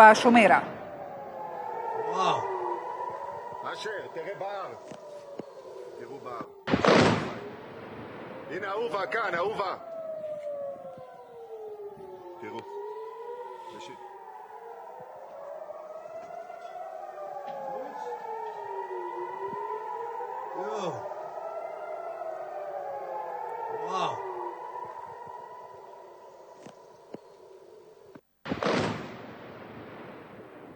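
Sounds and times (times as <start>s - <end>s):
speech: 0.0s - 0.7s, 8.5s - 9.9s, 20.6s - 21.1s
air raid sirens wailing during shelling: 0.0s - 30.7s
loud broad burst of shelling: 6.7s - 9.6s, 28.5s - 30.7s.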